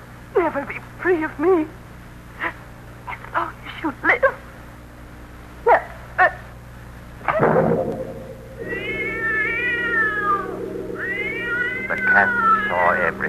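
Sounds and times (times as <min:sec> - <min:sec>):
low steady hum: 0:00.0 - 0:13.2
speech: 0:00.5 - 0:01.8
cat yowling: 0:08.6 - 0:13.2.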